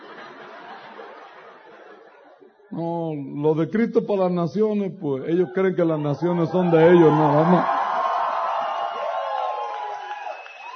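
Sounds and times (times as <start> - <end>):
laughter: 0.0 - 2.7
speech: 2.7 - 7.9
large crowd shouting and cheering loudly: 5.3 - 10.7.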